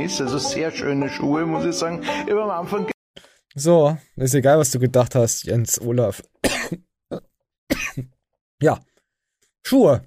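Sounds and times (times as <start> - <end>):
speech: 0.0 - 8.9, 9.6 - 10.0
person coughing: 6.4 - 8.2.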